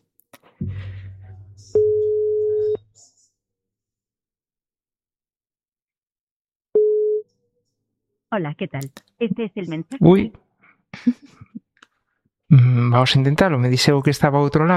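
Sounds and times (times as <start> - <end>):
low rumble: 0.6 - 2.8
telephone ringing tone on the line: 6.8 - 7.2
speech: 8.3 - 10.4, 11.0 - 11.5, 12.5 - 14.7.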